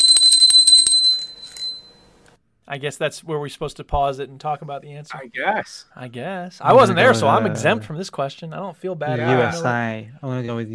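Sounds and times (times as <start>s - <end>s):
bright high-pitched metallic bell rung rapidly: 0.0s - 2.1s
speech: 2.7s - 10.7s.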